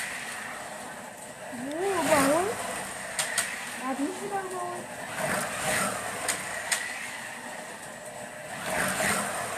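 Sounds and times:
electric toy slot cars whirring around a track: 0.0 - 9.5
sharp clicks: 3.1 - 3.6, 6.2 - 6.9
speech: 4.2 - 5.9.

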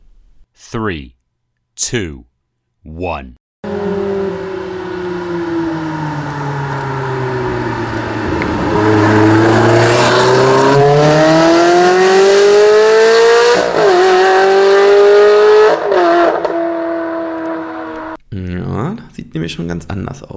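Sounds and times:
speech: 0.6 - 1.2, 1.8 - 3.4, 19.5 - 20.3
car engine accelerating hard through gear changes on a country road: 3.6 - 18.2
car exhaust turning louder and rougher as the exhaust flaps open: 3.6 - 18.2.

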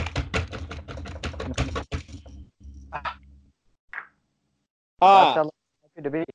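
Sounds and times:
typing on a computer keyboard: 0.0 - 2.2
speech: 5.0 - 6.3.

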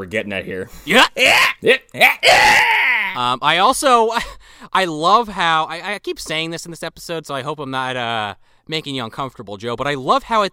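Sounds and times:
speech: 0.0 - 10.5
man screaming in a film clip: 0.9 - 3.3.

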